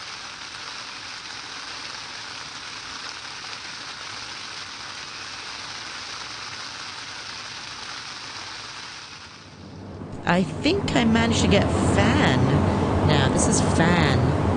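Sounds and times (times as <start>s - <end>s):
steady rain pattering on a tent: 0.0s - 9.8s
speech: 10.3s - 14.4s.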